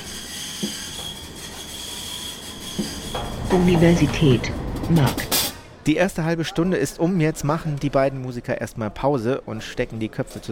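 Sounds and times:
arriving train wheels squealing at a station platform in Bonn: 0:00.0 - 0:04.7
steady rumbling rail noise of an arriving train: 0:00.0 - 0:05.9
speech: 0:02.8 - 0:10.5.

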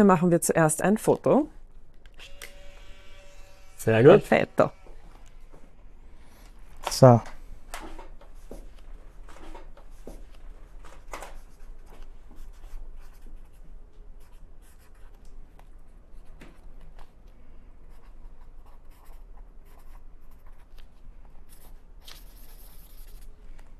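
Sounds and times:
speech: 0:00.0 - 0:01.6, 0:03.8 - 0:04.8, 0:06.8 - 0:07.3
taps and rustles: 0:06.8 - 0:12.1
pen scratching on paper writing an entry in a guestbook: 0:12.3 - 0:13.6, 0:17.9 - 0:20.8, 0:21.4 - 0:23.3.

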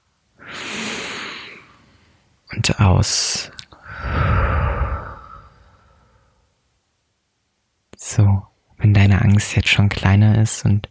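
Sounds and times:
deep slow breath during a guided relaxation exercise: 0:00.4 - 0:02.2, 0:03.8 - 0:06.5
speech: 0:02.5 - 0:03.6, 0:09.5 - 0:10.9.

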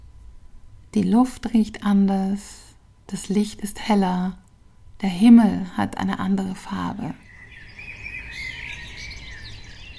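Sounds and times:
low rumble: 0:00.0 - 0:09.9
speech: 0:00.9 - 0:04.4, 0:05.0 - 0:07.2
bird chirping and trilling: 0:07.1 - 0:09.9.

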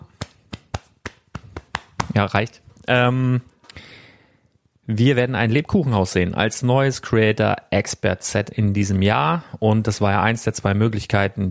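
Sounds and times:
hand patting own shoulder: 0:00.0 - 0:02.3
speech: 0:02.2 - 0:03.5, 0:04.9 - 0:11.4.

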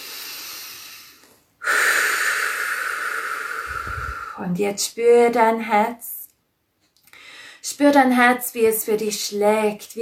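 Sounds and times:
deep breath in and out: 0:00.0 - 0:04.5, 0:07.1 - 0:07.6
speech: 0:04.4 - 0:06.2, 0:07.8 - 0:10.0.

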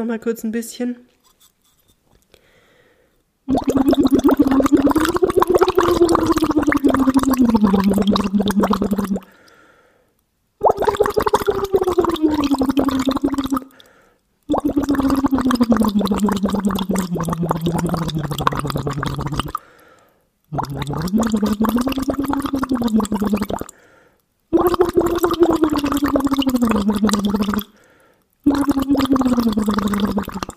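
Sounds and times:
speech: 0:00.0 - 0:01.5, 0:07.6 - 0:08.8, 0:21.1 - 0:22.0
air blown through a hose into water bubbling: 0:03.5 - 0:09.3, 0:10.6 - 0:13.9, 0:14.5 - 0:19.6, 0:20.5 - 0:23.8, 0:24.5 - 0:27.8, 0:28.4 - 0:30.5.

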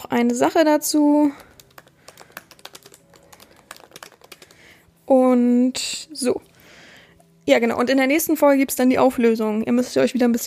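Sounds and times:
speech: 0:00.0 - 0:01.5, 0:05.1 - 0:06.5, 0:07.5 - 0:10.4
typing on a computer keyboard: 0:01.3 - 0:04.8.

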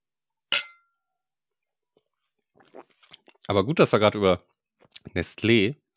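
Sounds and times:
glasses clinking in a toast: 0:00.5 - 0:00.9
speech: 0:02.8 - 0:05.8.

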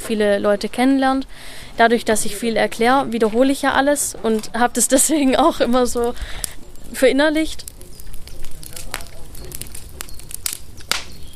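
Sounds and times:
crackling campfire: 0:00.0 - 0:11.3
speech: 0:00.1 - 0:07.7
campfire pops and snaps: 0:02.7 - 0:11.3.

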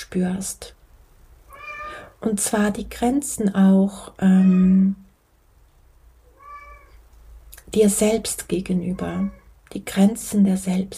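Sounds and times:
speech: 0:00.0 - 0:00.8, 0:02.2 - 0:05.0, 0:07.7 - 0:10.9
house cat meowing: 0:01.5 - 0:02.1, 0:06.2 - 0:07.0, 0:08.9 - 0:09.6.

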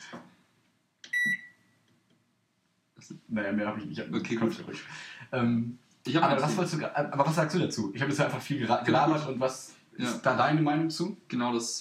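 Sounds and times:
microwave oven beep: 0:01.1 - 0:01.6
speech: 0:03.2 - 0:11.7.

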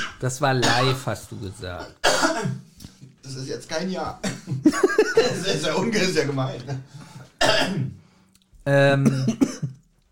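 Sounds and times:
speech: 0:00.2 - 0:08.0, 0:08.6 - 0:09.8
person coughing: 0:01.8 - 0:02.7, 0:04.2 - 0:04.6, 0:07.4 - 0:08.0, 0:09.0 - 0:09.8
laughter: 0:04.3 - 0:06.0.

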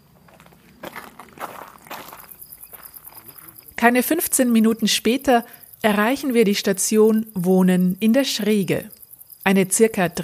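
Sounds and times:
footsteps crunching outdoors at a walking pace: 0:00.0 - 0:03.8
insect or cricket chirping: 0:00.0 - 0:10.2
speech: 0:03.8 - 0:10.2.

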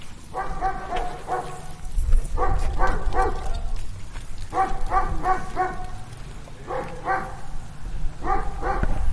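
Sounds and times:
dog barking outdoors in Brandenburg: 0:00.3 - 0:01.7, 0:02.3 - 0:03.6, 0:04.5 - 0:06.0, 0:06.6 - 0:07.5, 0:08.2 - 0:09.0.

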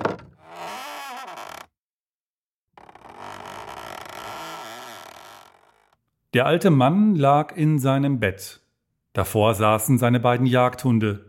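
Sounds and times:
door creaking open: 0:00.0 - 0:01.8, 0:02.8 - 0:06.0
speech: 0:06.3 - 0:08.6, 0:09.2 - 0:11.2.

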